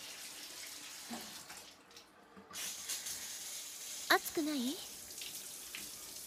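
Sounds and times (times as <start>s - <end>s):
hot water poured over someone while bathing: 0.0s - 6.2s
speech: 4.1s - 4.9s.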